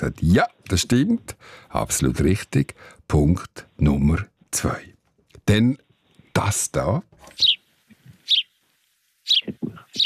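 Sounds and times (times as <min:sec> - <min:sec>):
speech: 0:00.0 - 0:04.9, 0:05.5 - 0:05.8, 0:06.4 - 0:07.6
sparrow chirping: 0:07.3 - 0:08.6, 0:09.2 - 0:10.0.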